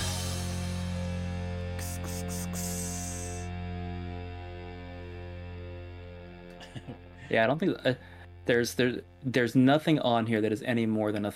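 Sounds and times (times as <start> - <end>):
bright crashing hits: 0.0 - 1.4
heavily distorted sludgy guitar riff: 0.0 - 9.8
speech: 6.8 - 11.3.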